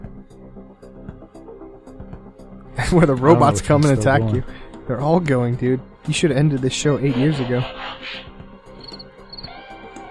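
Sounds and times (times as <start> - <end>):
speech: 2.8 - 8.3
crickets chirping sound effect: 8.8 - 9.5.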